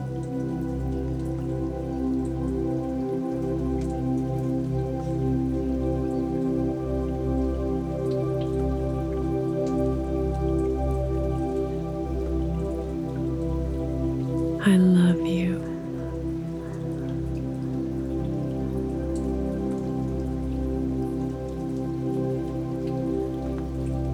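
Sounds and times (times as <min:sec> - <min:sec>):
steady rain pattering: 0:00.0 - 0:24.1.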